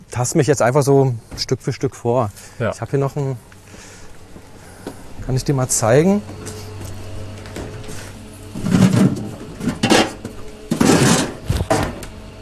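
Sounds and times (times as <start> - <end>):
speech: 0.2 - 3.5, 5.3 - 6.6
items clattering and rustling while being pulled out of a refrigerator: 6.2 - 12.1
containers shifting: 6.8 - 11.9.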